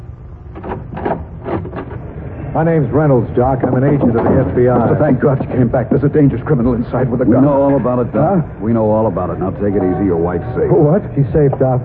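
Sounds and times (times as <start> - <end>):
door opening with creak and rattle: 0.5 - 2.4, 3.0 - 5.8
speech: 2.6 - 11.8.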